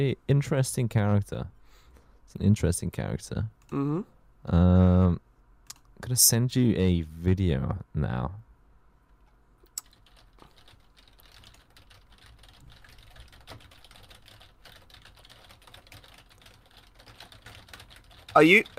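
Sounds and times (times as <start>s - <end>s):
speech: 0.0s - 1.6s, 2.3s - 5.3s, 6.0s - 8.4s, 18.4s - 18.7s
typing on a computer keyboard: 9.8s - 18.7s.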